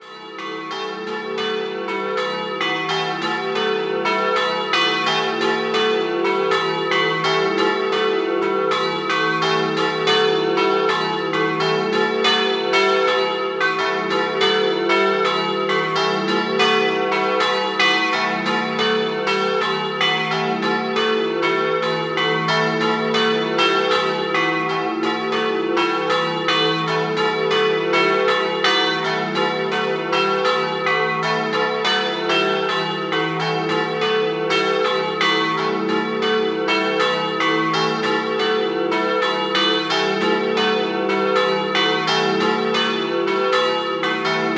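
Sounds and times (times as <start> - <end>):
bells ringing: 0.0 - 44.5.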